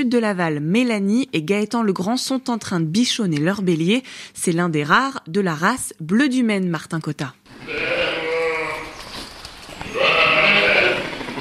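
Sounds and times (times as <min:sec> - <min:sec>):
speech: 0:00.0 - 0:08.1
faint farmyard noise on a sheep farm south of Laval France: 0:07.5 - 0:11.1
ewes bleating on a sheep farm south of Laval France: 0:07.6 - 0:09.2, 0:09.8 - 0:11.3.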